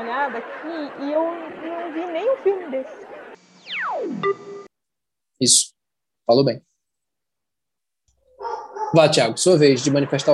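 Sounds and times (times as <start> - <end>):
laughter: 0.0 - 3.4, 9.4 - 10.3
speech: 0.1 - 4.6, 5.4 - 6.7, 8.9 - 10.3
dog barking: 8.3 - 9.2.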